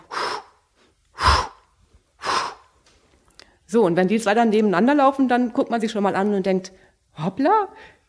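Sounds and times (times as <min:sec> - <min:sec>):
person imitating the breathing rhythm of a jogger or cyclist: 0:00.0 - 0:02.7
speech: 0:03.7 - 0:08.0.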